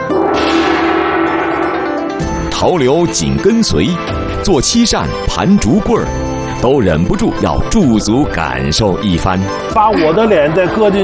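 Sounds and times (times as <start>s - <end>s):
large old brass gong struck and ringing: 0.0s - 4.2s
speech: 2.6s - 11.0s.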